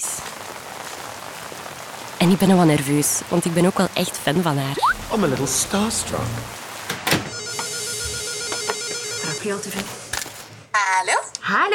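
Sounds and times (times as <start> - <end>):
heavy rain pouring: 0.0 - 8.4
speech: 2.2 - 6.6, 9.4 - 10.0, 11.0 - 11.7.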